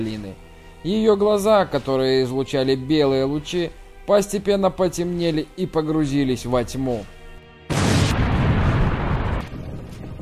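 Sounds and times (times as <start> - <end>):
speech: 0.0 - 7.2
loud destructive explosion as a sacrificial altar collapses: 7.7 - 9.8.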